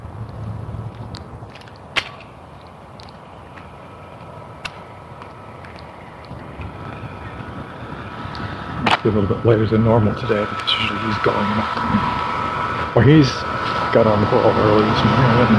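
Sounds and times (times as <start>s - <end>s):
boat engine drone passing on the water: 3.3s - 15.5s
speech: 9.0s - 12.3s, 13.0s - 15.5s.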